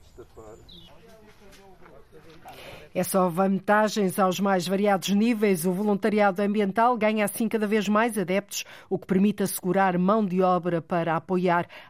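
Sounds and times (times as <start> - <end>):
small birds chirping outdoors: 0.0 - 2.5
steady open-air noise: 0.0 - 11.8
speech: 0.4 - 11.8.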